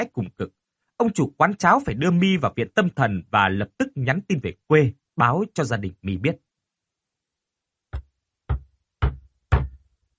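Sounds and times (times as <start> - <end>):
speech: 0.0 - 6.5
timid knocking on a door: 7.9 - 9.8.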